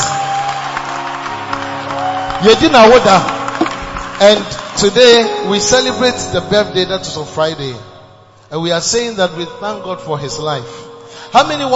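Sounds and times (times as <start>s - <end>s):
scattered whoops: 0.0s - 3.8s
large audience clapping and cheering: 0.0s - 5.9s
speech: 2.4s - 3.4s, 4.2s - 7.9s, 8.5s - 11.7s.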